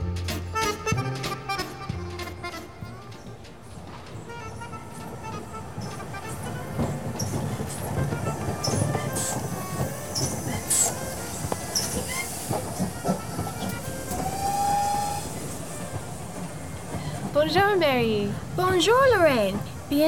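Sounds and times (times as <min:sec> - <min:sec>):
train engine rumbling: 0:00.0 - 0:19.9
indistinct voices murmuring: 0:00.6 - 0:20.0
train steam hissing in a Paris train station: 0:03.4 - 0:20.0
high squeal: 0:04.3 - 0:17.0
speech: 0:17.7 - 0:20.0.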